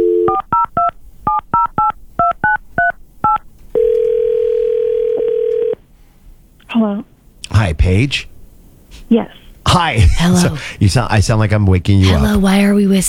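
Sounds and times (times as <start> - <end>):
touch-tone beeps of a telephone number being dialled: 0.0 - 5.8
telephone ringing tone: 3.7 - 5.8
speech: 7.9 - 8.3, 9.1 - 13.0.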